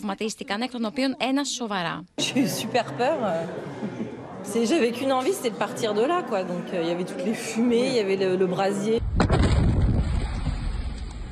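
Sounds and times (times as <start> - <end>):
speech: 0.0 - 9.2
laughter: 2.2 - 4.9
gas station explosion: 9.0 - 11.2.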